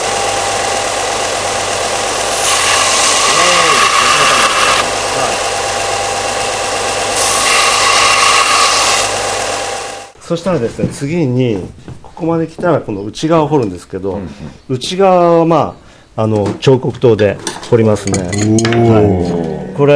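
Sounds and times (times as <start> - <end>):
belt sander with rotating sandpaper grinding the back of a piece of wood: 0.0 - 10.2
speech: 10.3 - 19.9.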